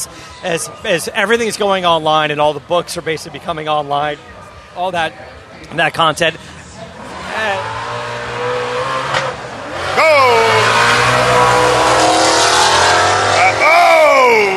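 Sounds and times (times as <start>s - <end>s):
speech: 0.0s - 6.6s, 10.0s - 10.6s
drag racing car engines roaring and revving on Woodward Avenue: 6.0s - 14.5s
brief tire squeal: 7.1s - 14.5s.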